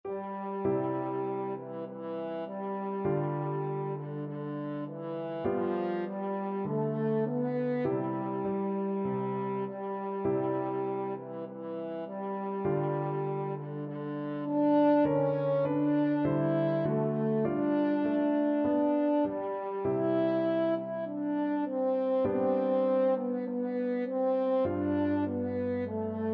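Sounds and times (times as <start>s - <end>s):
french horn playing a patriotic song: 0.1s - 26.3s.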